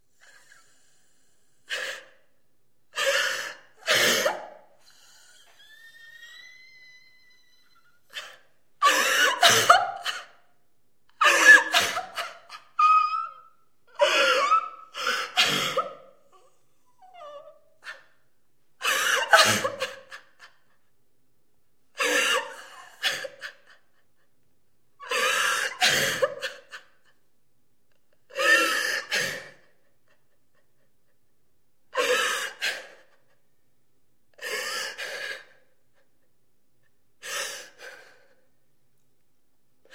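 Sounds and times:
woman crying and sobbing: 2.9 - 10.5, 11.1 - 18.2, 18.8 - 20.9, 22.0 - 24.3, 25.0 - 27.3, 28.3 - 31.3, 31.9 - 33.4.

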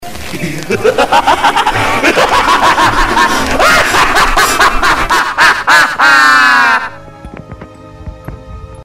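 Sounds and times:
cartoon cat laughing: 0.6 - 6.9.

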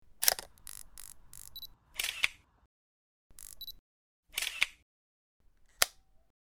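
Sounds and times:
camera: 0.2 - 2.4, 3.3 - 3.8, 4.4 - 4.8.

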